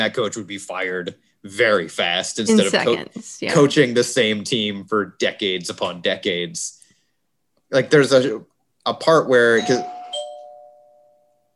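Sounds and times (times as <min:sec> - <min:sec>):
speech: 0:00.0 - 0:06.8, 0:07.7 - 0:10.0
doorbell chime: 0:09.6 - 0:11.5.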